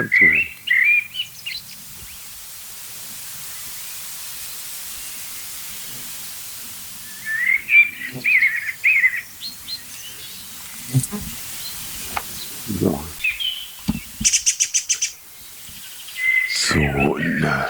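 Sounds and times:
rapid short ticking calls of a song thrush or blackbird: 0.0s - 2.3s, 7.0s - 17.6s
blackbird or agitated song thrush singing: 0.0s - 17.6s
faint hissing background: 0.0s - 17.6s.

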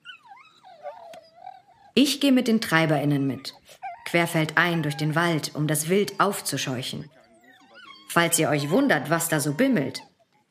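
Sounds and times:
excited hunting dogs whimpering and whining: 0.0s - 2.0s, 2.6s - 10.4s
speech: 2.0s - 7.2s, 8.1s - 10.1s.

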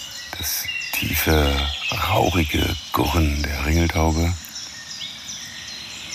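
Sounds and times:
low steady background: 0.3s - 4.7s
blackcap warblers singing: 0.3s - 5.9s
speech: 2.3s - 4.4s.

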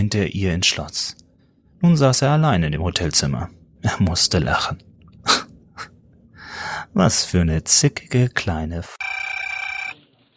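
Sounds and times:
speech: 0.0s - 1.2s, 1.8s - 5.4s, 6.9s - 9.0s
telephone ringing in a hotel room: 9.0s - 10.3s.

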